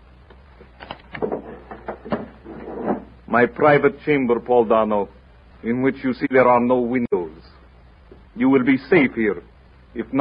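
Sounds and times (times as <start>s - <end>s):
wooden door swinging shut: 0.8s - 3.1s
speech: 3.3s - 7.1s, 8.5s - 10.2s.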